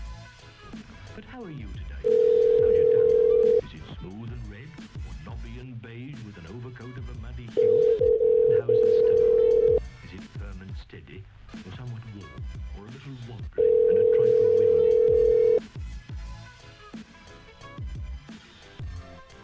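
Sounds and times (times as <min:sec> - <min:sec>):
speech: 0:01.4 - 0:02.2
telephone ring tone on a call: 0:02.0 - 0:03.6, 0:07.6 - 0:09.8, 0:13.6 - 0:15.6.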